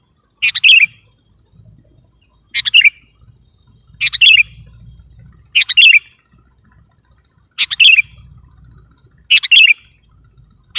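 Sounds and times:
Sooty-headed bulbul chirps ending in dropping whistles: 0:00.4 - 0:01.0, 0:02.5 - 0:06.3, 0:07.6 - 0:08.3, 0:09.3 - 0:10.0.

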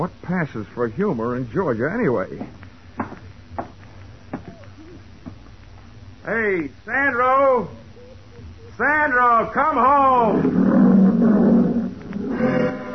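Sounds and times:
speech: 0:00.0 - 0:02.6, 0:06.3 - 0:07.8, 0:08.8 - 0:11.7
old Liberian lion roaring: 0:10.2 - 0:12.8.

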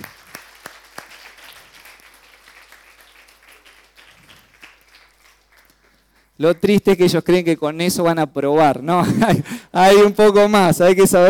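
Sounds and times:
group applauding during a Bible lesson: 0:00.0 - 0:06.6
speech: 0:06.4 - 0:11.2.

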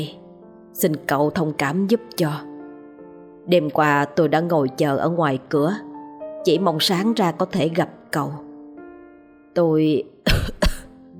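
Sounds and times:
speech: 0:00.0 - 0:00.2, 0:00.8 - 0:02.5, 0:03.4 - 0:08.4, 0:09.6 - 0:10.6
old man coughing: 0:10.3 - 0:10.9.

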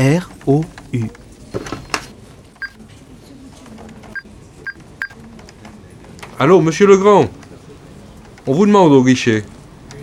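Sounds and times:
speech: 0:00.0 - 0:01.7, 0:06.4 - 0:07.4, 0:08.5 - 0:09.5
telephone keypad tones as a number is dialed at a bank counter: 0:04.2 - 0:05.2.

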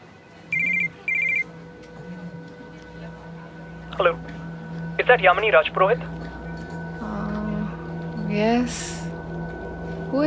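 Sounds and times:
low hum: 0:00.0 - 0:10.2
telephone bell ringing at a newspaper office desk: 0:00.5 - 0:01.5
speech: 0:04.0 - 0:04.4, 0:05.0 - 0:06.2, 0:08.3 - 0:09.0.

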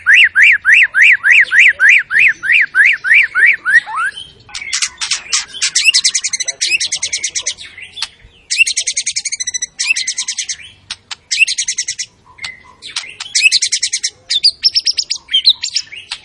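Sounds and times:
white-rumped shama brief whistled notes: 0:00.0 - 0:16.2
white-rumped shama giving high rattling chatter: 0:04.5 - 0:14.1.

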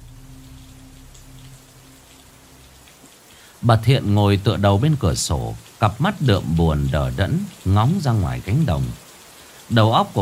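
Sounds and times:
faint low hum: 0:00.0 - 0:05.6
heavy rain pouring over a village: 0:00.0 - 0:10.1
speech: 0:03.6 - 0:09.0, 0:09.7 - 0:10.1.

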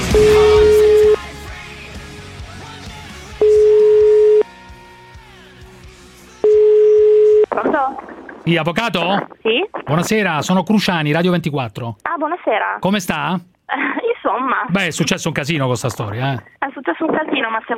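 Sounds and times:
telephone line tone beeps while placing a call: 0:00.1 - 0:01.2, 0:03.4 - 0:04.5, 0:06.4 - 0:07.5
noise: 0:06.4 - 0:17.7
speech: 0:07.9 - 0:17.7.

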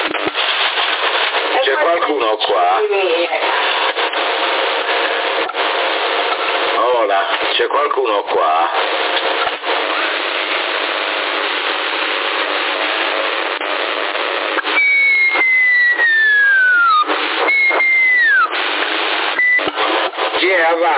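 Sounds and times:
CB radio hiss and hum: 0:00.0 - 0:20.9
speech: 0:01.7 - 0:03.6, 0:07.1 - 0:09.8, 0:20.6 - 0:20.9
people whistling over a CB radio channel in Sassari: 0:14.6 - 0:18.6, 0:19.3 - 0:19.7.

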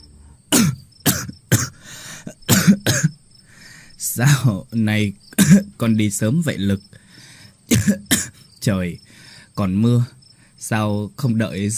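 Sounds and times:
elderly woman coughing: 0:00.5 - 0:03.2, 0:05.4 - 0:05.7, 0:07.7 - 0:08.4
speech: 0:04.2 - 0:07.0, 0:07.8 - 0:11.7.

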